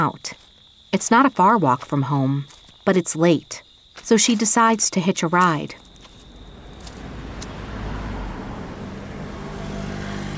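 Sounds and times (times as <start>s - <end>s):
speech: 0.0s - 5.8s
steady road traffic late at night in Leeds: 5.4s - 10.3s
continuous low engine drone of passing vehicles: 6.3s - 10.3s.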